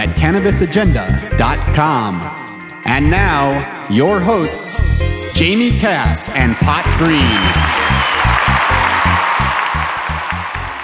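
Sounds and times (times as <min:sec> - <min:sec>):
speech: 0:00.2 - 0:08.3
dense loud clapping: 0:06.6 - 0:10.8.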